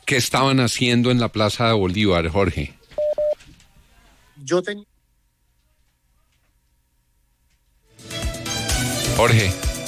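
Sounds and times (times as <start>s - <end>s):
speech: 0.1s - 2.8s, 4.5s - 4.9s, 9.2s - 9.7s
telephone dialing tones while redialing a dropped call: 3.0s - 3.3s.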